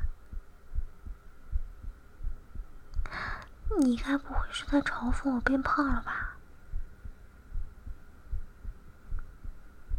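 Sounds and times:
human heartbeat heard through the chest: 0.0 - 3.8, 6.7 - 9.9
faint hum: 0.0 - 9.9
speech: 3.8 - 6.3.

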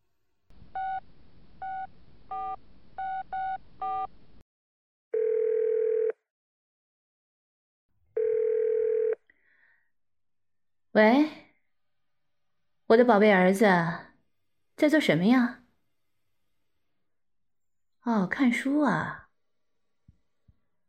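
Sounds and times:
telephone dial tone while placing a call: 5.2 - 6.2, 8.2 - 9.2
speech: 11.0 - 11.3, 12.9 - 14.1, 14.8 - 15.6, 18.0 - 19.2.

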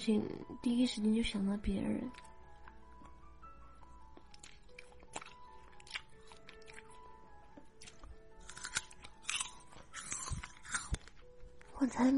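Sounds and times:
speech: 0.0 - 2.3, 11.8 - 12.1
crunching as winter jujubes are bitten and chewed: 2.1 - 3.2, 3.8 - 12.1.

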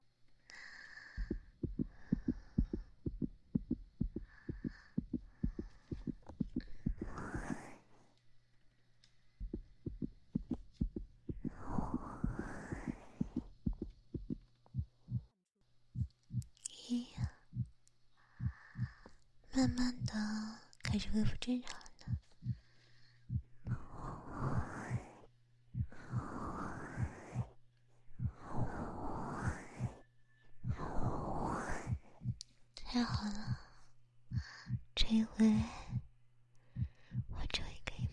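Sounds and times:
soft breathy rushes and sighs: 0.4 - 8.2, 9.0 - 15.4, 16.0 - 38.1
fast heartbeat heard through a person's chest: 1.1 - 7.7, 9.4 - 15.4, 16.0 - 17.8, 18.4 - 22.6, 23.2 - 25.1, 25.7 - 27.6, 28.2 - 30.0, 30.6 - 33.7, 34.3 - 36.1, 36.8 - 38.1
speech: 21.0 - 21.8.

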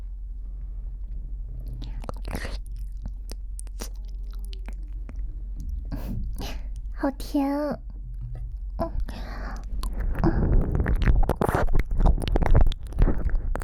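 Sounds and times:
faint steady low hum: 0.0 - 13.6
person chewing and crunching a homemade liquor-filled chocolate sweet: 1.6 - 7.0, 8.4 - 13.6
speech: 7.0 - 7.9.

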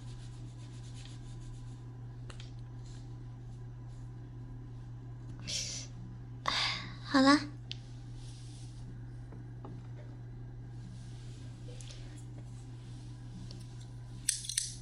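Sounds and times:
steady low hum: 0.0 - 14.8
speech: 7.2 - 7.6
metal scissors being handled: 14.2 - 14.8.

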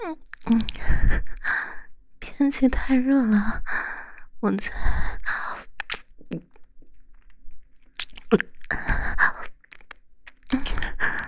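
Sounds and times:
soft mouth sounds: 0.0 - 1.4, 4.6 - 7.3, 7.9 - 11.2
speech: 0.1 - 1.1, 2.4 - 5.0
crunching and chewing on a crispy chocolate-coated ice cream bar: 0.2 - 0.8, 5.8 - 11.2.

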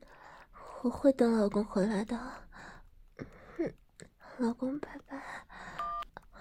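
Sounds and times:
speech: 0.8 - 2.4, 4.4 - 5.2
telephone keypad tone: 5.8 - 6.1.

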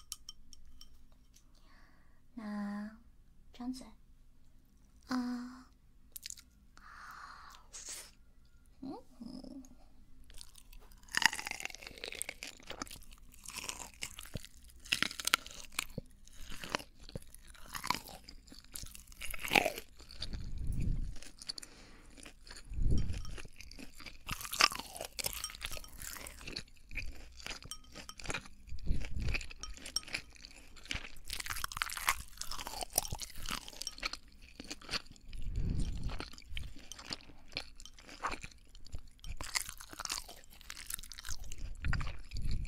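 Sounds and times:
speech: 3.6 - 4.0, 5.1 - 5.5
crunchy seafood being eaten: 10.3 - 42.6.

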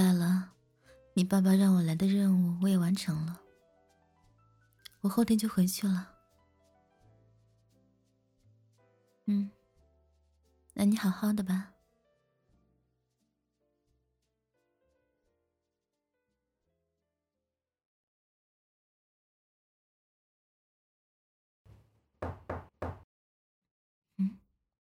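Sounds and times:
speech: 1.2 - 3.4, 5.0 - 6.1, 9.3 - 9.6, 10.8 - 11.7
knocking on a hotel room door: 21.7 - 23.1.

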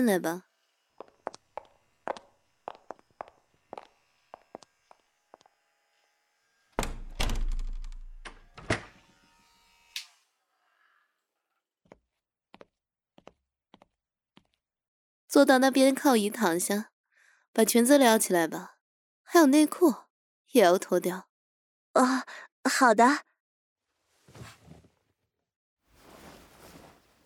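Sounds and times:
speech: 0.0 - 0.5, 15.3 - 16.9, 17.6 - 21.3, 22.0 - 23.3
shop door closing: 6.8 - 9.0.

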